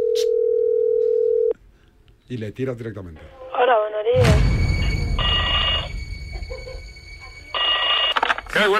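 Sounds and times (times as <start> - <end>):
steady telephone tone while a call is placed: 0.0 - 1.5, 5.1 - 6.0, 7.5 - 8.5
speech: 2.3 - 4.5, 8.6 - 8.7.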